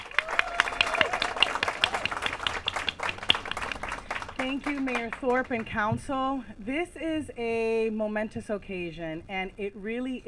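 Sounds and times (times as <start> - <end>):
audience at a city council meeting applauding: 0.0 - 5.7
speech: 4.4 - 10.2.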